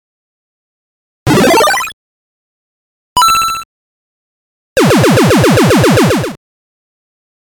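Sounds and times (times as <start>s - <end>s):
NES video game sound effects: 1.3s - 1.9s, 4.8s - 6.4s.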